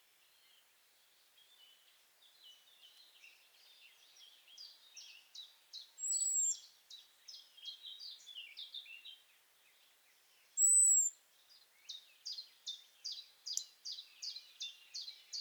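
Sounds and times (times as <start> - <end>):
European robin Erithacus rubecula song: 1.4 - 15.3.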